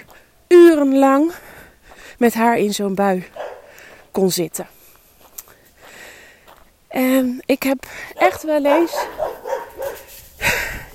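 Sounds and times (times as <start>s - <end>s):
speech: 0.8s - 1.4s, 2.2s - 3.4s, 4.2s - 4.8s, 7.0s - 9.2s
guard dogs barking outdoors: 3.3s - 3.8s, 8.2s - 10.1s.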